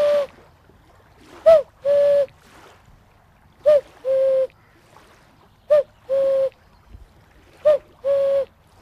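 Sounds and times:
cuckoo call blown on a wooden bird whistle pitched at E-sharp: 0:00.0 - 0:00.4, 0:01.4 - 0:02.3, 0:03.6 - 0:04.5, 0:05.7 - 0:06.6, 0:07.6 - 0:08.5.

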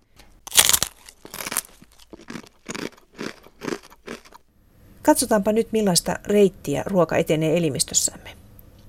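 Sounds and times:
dry crispbread being bitten and chewed: 0:00.5 - 0:04.4
speech: 0:05.1 - 0:08.4.

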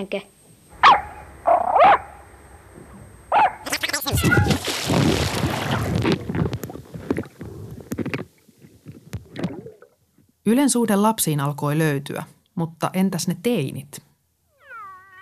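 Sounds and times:
speech: 0:00.0 - 0:00.4, 0:10.5 - 0:14.1
dog barking: 0:00.8 - 0:02.2, 0:03.3 - 0:03.7
rough noisy splashing and scuffling: 0:04.0 - 0:10.3.

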